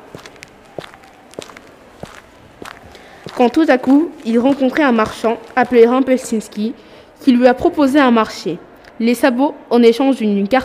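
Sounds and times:
footsteps of a person walking calmly: 0.0 - 6.5
speech: 3.4 - 10.6.

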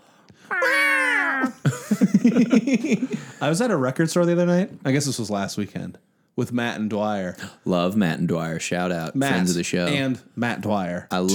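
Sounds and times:
cat yowling like a siren: 0.5 - 1.6
laughter: 0.5 - 3.6
speech: 2.2 - 11.3.

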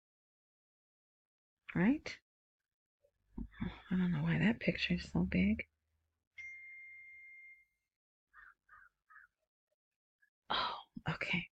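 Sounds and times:
speech: 1.7 - 2.2, 3.4 - 5.7, 10.5 - 11.5
phone notification ding: 6.4 - 7.8.

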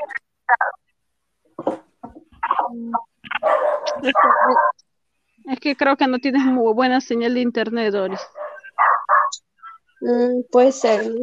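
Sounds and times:
speech: 2.7 - 3.1, 4.0 - 4.7, 5.5 - 8.4, 10.0 - 11.2
dog downstairs barking and yipping: 3.3 - 4.8, 8.1 - 9.4.

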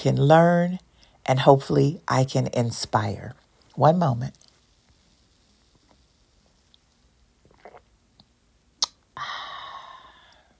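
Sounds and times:
speech: 0.0 - 4.4
airy slurp of coffee: 7.4 - 7.9
soft mouth sounds: 7.4 - 10.5.

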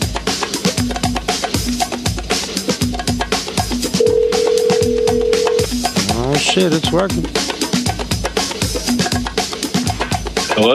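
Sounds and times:
thumping rhythmic music bed: 0.0 - 10.7
short repeated electronic tones: 4.0 - 5.7
speech: 6.6 - 7.6, 10.6 - 10.7.

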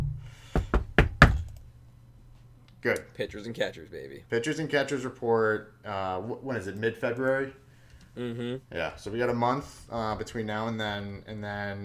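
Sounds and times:
faint low hum: 0.0 - 11.8
quick knocks on a wooden surface: 0.6 - 1.5
speech: 2.8 - 7.6, 8.2 - 11.8.

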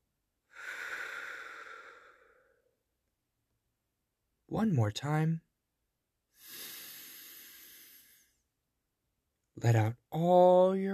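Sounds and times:
deep breath in and out: 0.5 - 2.8, 6.3 - 8.5
speech: 4.5 - 5.5, 9.6 - 10.9.

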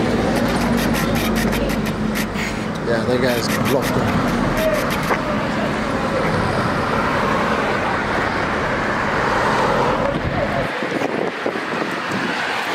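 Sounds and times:
cars roaring past on a street: 0.0 - 12.7
loud street traffic rumbling: 0.0 - 12.7
speech: 2.9 - 4.5.

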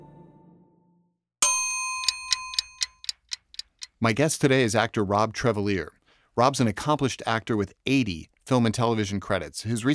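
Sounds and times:
bright ringing ding: 1.4 - 3.1
clock-style timer ticking in quick steady clicks: 1.4 - 4.0
speech: 4.0 - 9.9.

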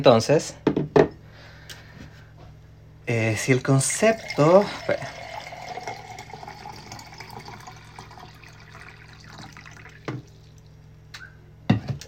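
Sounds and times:
speech: 0.0 - 0.6, 3.1 - 5.2
water pouring into a glass: 3.4 - 10.7.

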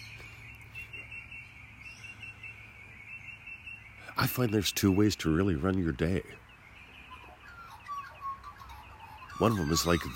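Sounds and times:
birds singing: 0.0 - 10.1
speech: 4.2 - 6.4, 9.4 - 10.1.

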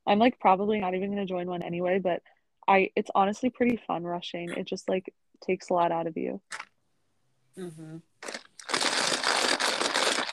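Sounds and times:
speech: 0.1 - 6.7, 7.6 - 8.4
person crunching while eating: 8.2 - 10.3.

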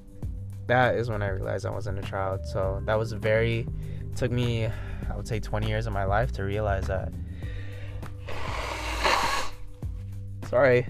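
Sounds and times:
speech: 0.7 - 7.2, 10.5 - 10.8
person blowing nose: 8.2 - 9.7.

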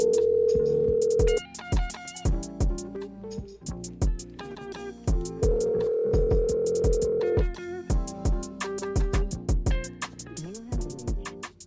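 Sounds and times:
phone line ringback tone of an unanswered outgoing call: 0.0 - 1.4, 5.4 - 7.5
punchy music with sharp beats: 0.0 - 11.6.

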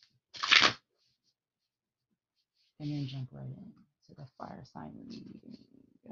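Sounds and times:
tarot cards being shuffled in a riffle: 0.4 - 0.8
speech: 2.8 - 6.1.

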